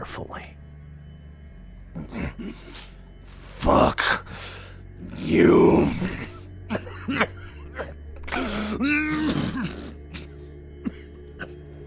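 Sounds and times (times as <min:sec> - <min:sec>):
speech: 0:02.0 - 0:02.9, 0:05.3 - 0:06.2
throat clearing: 0:06.7 - 0:11.6
person coughing: 0:06.7 - 0:11.7.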